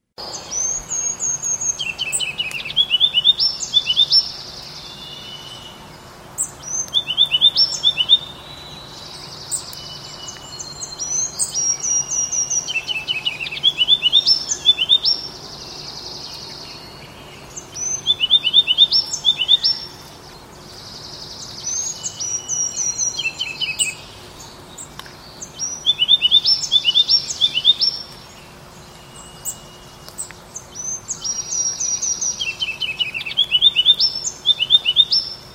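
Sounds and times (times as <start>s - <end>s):
faint birds singing: 0.0s - 35.5s.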